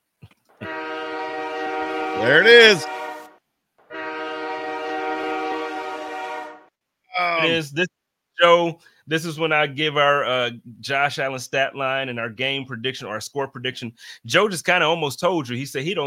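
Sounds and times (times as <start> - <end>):
train horn blasts in a multi-tone chord: 0.6 - 6.7
speech: 2.2 - 3.0, 7.5 - 16.0.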